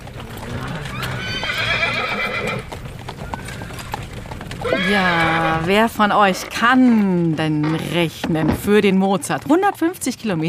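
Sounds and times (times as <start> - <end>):
carriage horses clip-clopping on the road: 0.0 - 10.4
carriage horse whinnying: 0.2 - 6.7
speech: 4.9 - 10.4.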